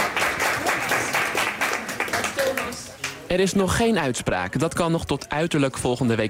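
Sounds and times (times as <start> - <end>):
supporters applauding in the hall of a courthouse: 0.0 - 3.3
murmur of voices: 0.0 - 6.2
speech: 3.3 - 6.2.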